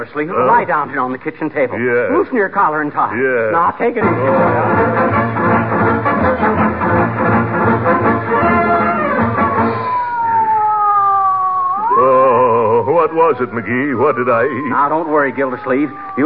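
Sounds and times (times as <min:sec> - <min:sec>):
speech: 0:00.0 - 0:05.4, 0:13.1 - 0:16.2
ambulance siren wailing: 0:04.0 - 0:06.7, 0:08.0 - 0:16.2.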